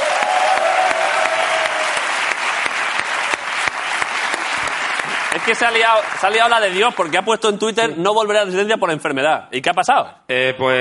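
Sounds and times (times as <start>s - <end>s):
audience applause: 0.0s - 7.6s
speech: 5.4s - 10.7s.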